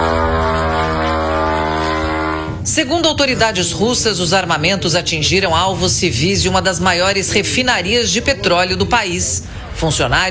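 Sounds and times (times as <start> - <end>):
kamikaze drone engine buzzing in flight: 0.0 - 2.7
laughter: 0.0 - 10.2
speech: 2.8 - 10.2.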